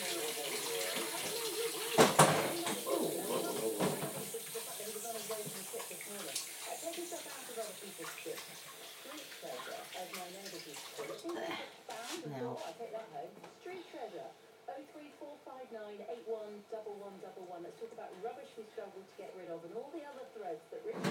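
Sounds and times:
kitchen tap running while greasy items are rinsed: 0.0 - 11.3
faint voice-like murmurs: 0.0 - 21.0.

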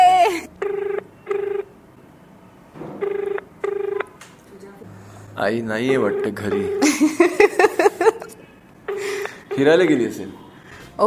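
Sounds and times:
telephone ringing tone on an outgoing call: 0.0 - 1.8, 3.0 - 4.2, 5.8 - 7.7, 8.9 - 10.1
speech: 5.4 - 7.5, 9.6 - 10.4
laughter: 6.5 - 9.9.

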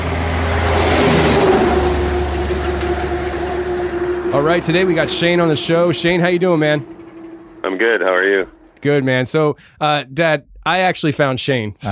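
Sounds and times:
diesel truck engine revving as it is put in gear and driven off: 0.0 - 9.3
speech: 4.4 - 7.0, 7.6 - 11.9.

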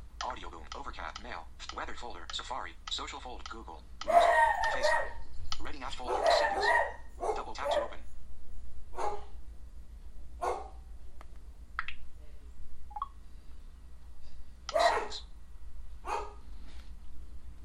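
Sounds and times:
low steady hum: 0.0 - 17.6
speech: 0.9 - 8.1
dogs barking: 4.0 - 5.2, 5.9 - 8.0, 9.0 - 9.4, 10.4 - 10.8, 14.7 - 15.3, 16.0 - 16.4.

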